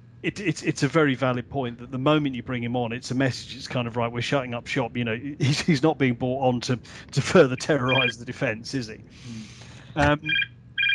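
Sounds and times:
speech: 0:00.2 - 0:10.5
home landline telephone ringing: 0:07.8 - 0:08.1, 0:10.1 - 0:10.9.

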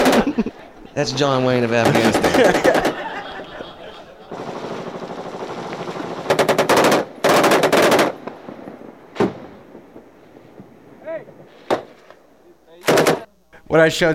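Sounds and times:
machine gun fire from a Marine in Afghanistan: 0:00.0 - 0:00.5, 0:01.7 - 0:03.2, 0:04.3 - 0:10.7, 0:12.8 - 0:13.3
laughter: 0:00.0 - 0:04.9
speech: 0:00.4 - 0:02.8, 0:13.7 - 0:14.1
sharp single gunshots: 0:01.8 - 0:03.0, 0:05.5 - 0:12.2, 0:12.8 - 0:13.3.

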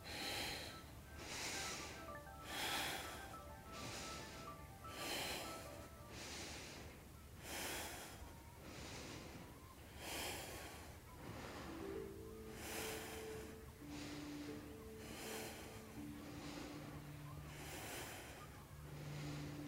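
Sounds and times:
rhythmic exercise breathing with loud airy exhales: 0:00.0 - 0:19.6.

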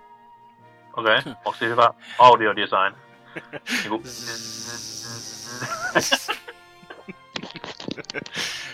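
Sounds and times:
buzzing of bees from a beehive: 0:00.8 - 0:08.7
speech: 0:01.0 - 0:06.3
laughter: 0:01.0 - 0:08.7
brief vocal sounds: 0:03.9 - 0:05.9.

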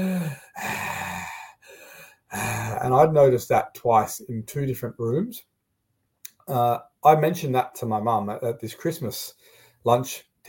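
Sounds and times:
voice imitating an old man's heavy rasping breathing: 0:00.0 - 0:02.9
speech: 0:02.8 - 0:05.5, 0:06.5 - 0:10.4.

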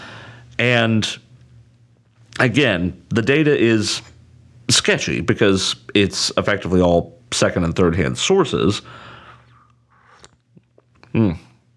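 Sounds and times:
faint low hum: 0:00.0 - 0:11.7
speech: 0:00.6 - 0:01.3, 0:02.4 - 0:04.1, 0:04.7 - 0:09.1, 0:11.1 - 0:11.5
person slurping while sipping a drink: 0:09.5 - 0:10.4
small wet mouth clicks: 0:10.0 - 0:11.1.

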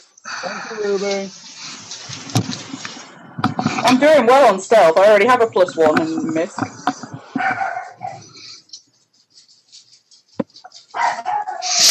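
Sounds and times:
speech: 0:00.0 - 0:01.4, 0:03.8 - 0:06.8
dog barking: 0:07.4 - 0:08.3, 0:10.9 - 0:11.8.

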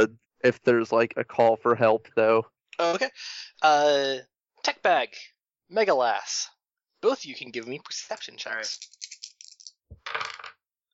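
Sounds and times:
speech: 0:00.0 - 0:09.0
dice clicking and clattering across a hard tabletop: 0:08.7 - 0:10.6.

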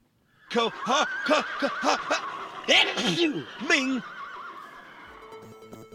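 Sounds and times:
laughter: 0:00.4 - 0:05.5
horse whinnying with a long quavering neigh: 0:04.0 - 0:05.3.

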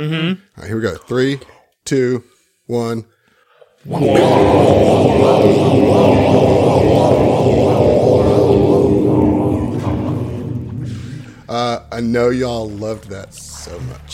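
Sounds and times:
speech: 0:00.0 - 0:03.1, 0:03.8 - 0:07.8, 0:12.0 - 0:14.1
whooshing scene-transition sound effect: 0:03.9 - 0:11.6.

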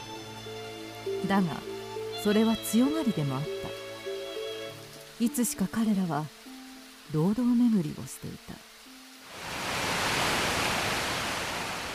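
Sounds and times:
speech: 0:01.3 - 0:03.6, 0:05.2 - 0:06.4, 0:07.1 - 0:08.7
waterfall roaring: 0:09.3 - 0:11.9.

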